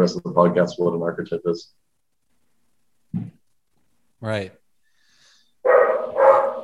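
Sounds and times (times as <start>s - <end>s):
speech: 0.0s - 1.8s, 4.2s - 4.6s
dog barking throatily: 5.6s - 6.6s.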